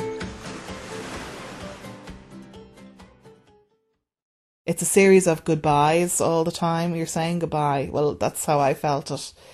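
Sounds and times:
sparkling wine fizzing in a glass: 0.1s - 2.1s
speech: 4.7s - 9.5s.

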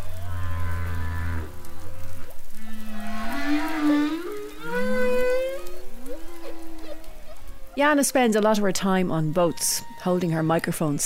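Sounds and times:
humpback whale moaning underwater off the Irish coast: 0.0s - 7.8s
speech: 7.8s - 11.0s.

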